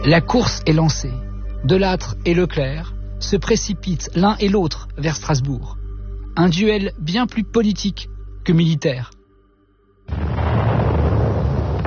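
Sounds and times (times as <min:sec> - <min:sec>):
speech: 0:00.0 - 0:05.8, 0:06.4 - 0:09.1
motorised artillery cannon fire near fir forest: 0:10.1 - 0:11.8.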